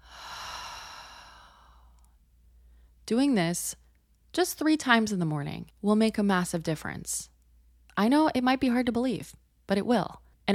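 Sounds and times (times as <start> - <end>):
deep belly breath in through the nose and out through the mouth: 0.0 - 3.0
speech: 3.1 - 3.8, 4.4 - 7.3, 8.0 - 10.5.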